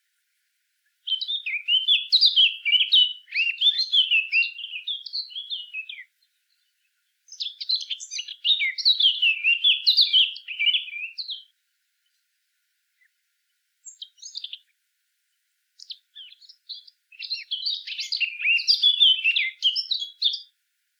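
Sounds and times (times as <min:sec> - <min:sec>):
Eurasian blackcap Sylvia atricapilla song of fast chattering varied warbling: 0:01.1 - 0:06.1, 0:07.3 - 0:11.5, 0:13.8 - 0:14.7, 0:15.8 - 0:20.5.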